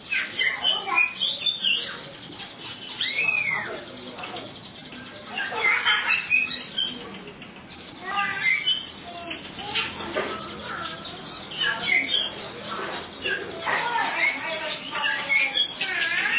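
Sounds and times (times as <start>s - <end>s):
Oriental magpie-robin song of scratchy chirping phrases: 0.0s - 16.3s.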